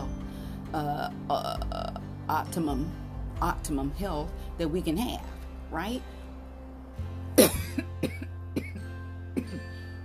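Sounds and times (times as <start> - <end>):
speech: 0.7 - 6.2
person coughing from allergies to drinking coffee with milk: 7.4 - 9.8.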